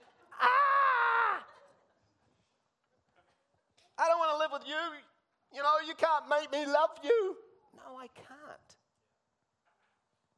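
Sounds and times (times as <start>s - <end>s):
person imitating a woman screaming: 0.4s - 1.5s
speech: 4.5s - 8.8s.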